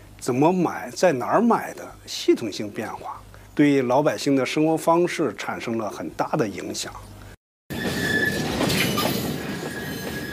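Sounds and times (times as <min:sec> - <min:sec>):
speech: 0:00.2 - 0:07.2
freight train slowly pulling into station: 0:07.7 - 0:10.3
thin metallic freight train wheel squeals: 0:07.7 - 0:10.3.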